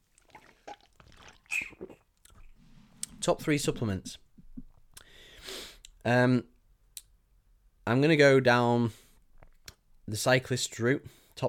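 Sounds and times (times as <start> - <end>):
person sipping a drink with soft wet slurping: 0.1 - 3.7
speech: 3.2 - 4.2, 6.0 - 6.5, 7.9 - 9.0, 10.1 - 11.4.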